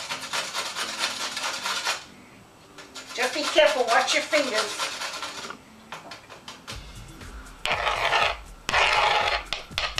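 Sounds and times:
medium-sized carrot being grated by hand: 0.0 - 2.1, 2.8 - 5.6, 7.6 - 9.9
speech: 3.2 - 5.0.

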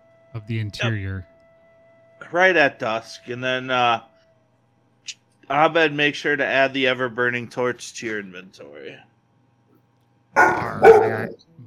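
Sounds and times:
speech: 0.4 - 1.3, 2.2 - 4.1, 5.0 - 9.1
dog barking in a tavern: 10.4 - 11.4.

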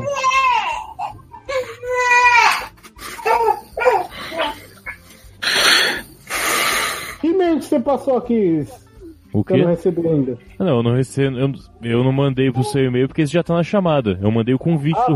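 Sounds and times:
infant crying in wailing bursts: 0.0 - 7.1, 12.4 - 13.0, 14.7 - 15.1
infant gasping and whimpering: 0.0 - 7.2
speech: 7.8 - 15.1.

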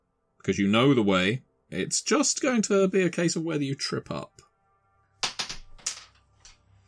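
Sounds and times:
speech: 0.4 - 4.5
new dice clattering across a hard table: 5.2 - 6.6.

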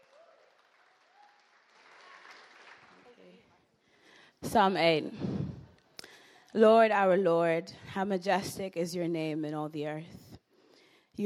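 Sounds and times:
audience applauding: 0.0 - 3.4
speech: 4.4 - 5.4, 6.6 - 10.2.

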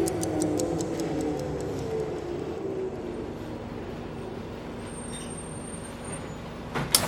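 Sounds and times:
bus indicator ticking: 0.0 - 1.8
bus engine rumbling as the bus slows: 0.0 - 6.8.

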